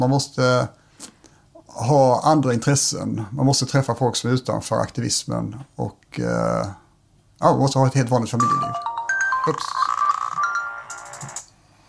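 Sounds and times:
speech: 0.0 - 1.1, 1.8 - 6.8, 7.4 - 10.0
phone ringtone bright electronic melody for an incoming call: 8.4 - 11.4.

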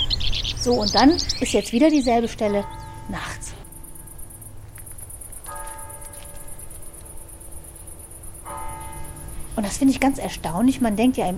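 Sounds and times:
crickets chirping in a garden at night: 0.0 - 11.3
speech: 0.6 - 3.5, 9.6 - 11.3
faint bell-like tones: 2.2 - 11.3.

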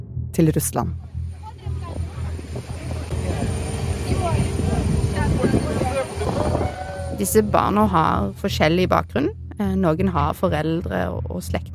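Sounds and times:
rumbling aircraft engine drone at a busy airport: 0.0 - 10.8
speech: 0.4 - 1.1, 7.2 - 11.7
indistinct voices murmuring at an airport: 1.3 - 8.0.

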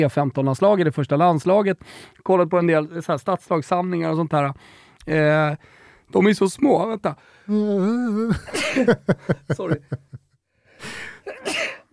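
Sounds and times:
speech: 0.0 - 10.2
short sharp breaths building up to a sneeze: 1.8 - 2.2, 4.6 - 5.0, 5.6 - 6.1, 10.6 - 11.3
laughter: 8.2 - 10.2.

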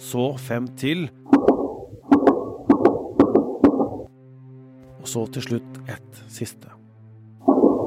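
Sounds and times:
speech: 0.0 - 1.3, 5.1 - 6.8
gunshots in the attic of a house: 1.3 - 4.1.

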